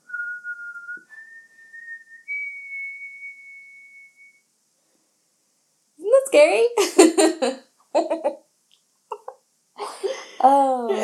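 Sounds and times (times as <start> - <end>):
lone whistled melody of three sustained notes: 0.0 - 4.5
speech: 6.3 - 8.4.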